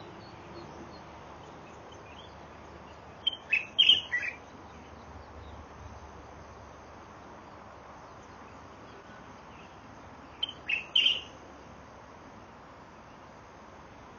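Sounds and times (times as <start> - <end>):
quiet hiss: 0.0 - 14.1
light-vented bulbul giving sharp chirping whistled notes: 3.3 - 4.4, 10.4 - 11.3.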